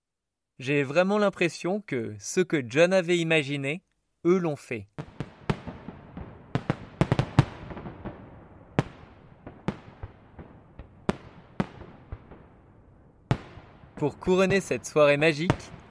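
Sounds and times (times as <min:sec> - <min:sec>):
speech: 0:00.6 - 0:05.2, 0:14.0 - 0:15.8
fireworks cracking and booming across the sky: 0:05.0 - 0:15.8.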